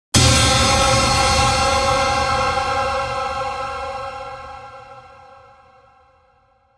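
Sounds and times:
crashing metallic stab in the key of C: 0.2 - 5.4.

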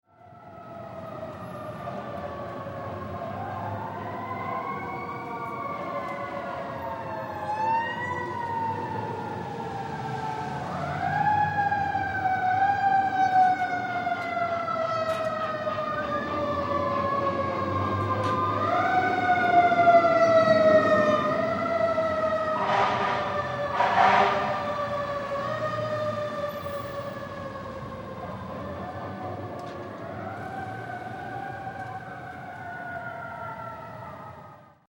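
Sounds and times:
city street ambience: 0.1 - 34.8
fire, police and paramedic sirens reverberating throughout cityscape: 0.1 - 34.8.

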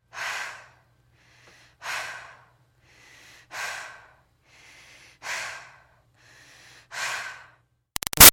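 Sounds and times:
woman breathing during exercise cool down: 0.1 - 7.7.

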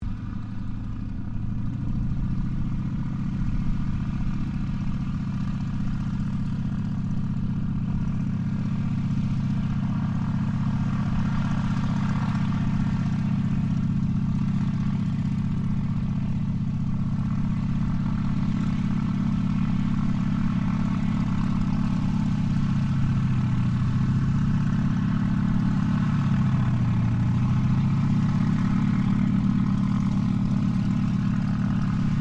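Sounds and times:
Yakovlev Yak-52 training aircraft system check: 0.0 - 32.1.

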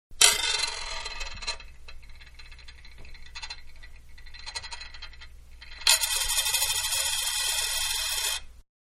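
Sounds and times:
dime spinning on glass: 0.2 - 8.5.

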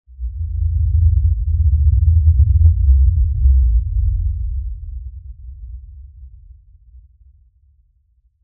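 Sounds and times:
low bass impact rumble pass by: 0.2 - 7.0.

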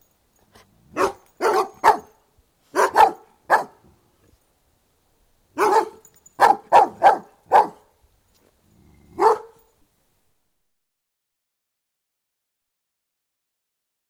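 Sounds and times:
Doberman barking outdoors: 0.9 - 3.8, 5.6 - 7.9, 9.2 - 9.6.

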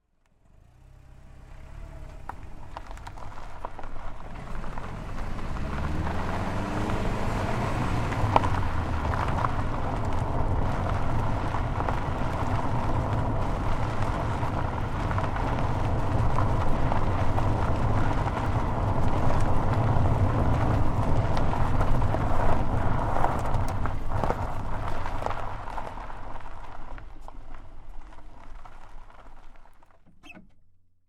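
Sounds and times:
car tires rolling on gravel and dirt, onboard: 0.3 - 30.5.

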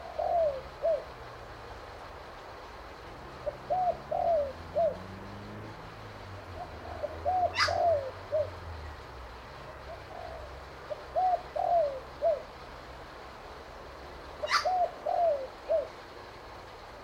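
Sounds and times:
spotted dove cooing: 0.0 - 1.3, 3.3 - 9.0, 9.6 - 12.6, 14.3 - 16.2.

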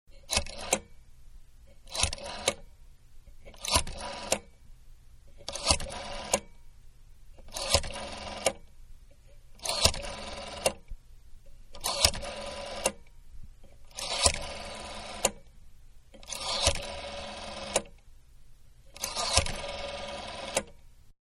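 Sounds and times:
rotary telephone dialing in numerical order: 0.2 - 0.9, 1.8 - 2.6, 3.5 - 4.5, 5.4 - 6.5, 7.5 - 8.6, 9.6 - 10.8, 11.8 - 13.0, 13.9 - 15.4, 16.2 - 17.9, 18.9 - 20.8.

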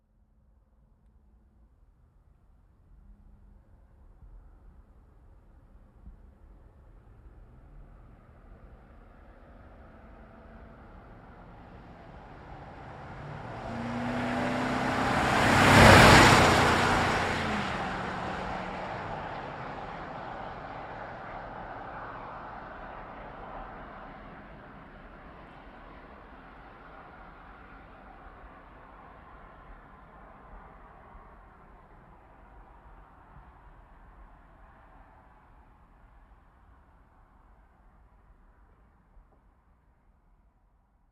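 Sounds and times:
2010 GMC Savana truck engine revving fast: 12.4 - 19.8.

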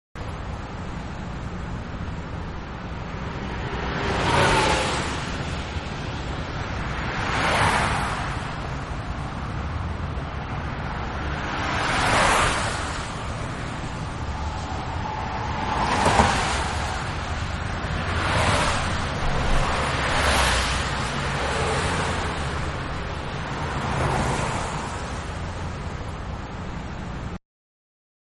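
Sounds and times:
medium highway traffic: 0.2 - 27.4.

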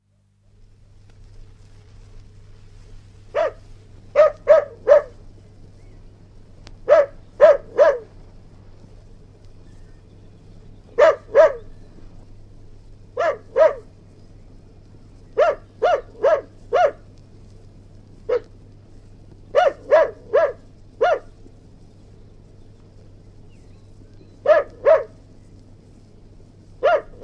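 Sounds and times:
mongrel terrier barking: 3.3 - 5.2, 6.8 - 8.2, 11.0 - 11.7, 13.2 - 13.9, 15.3 - 17.1, 18.3 - 18.5, 19.5 - 21.4, 24.4 - 25.2, 26.8 - 27.2.

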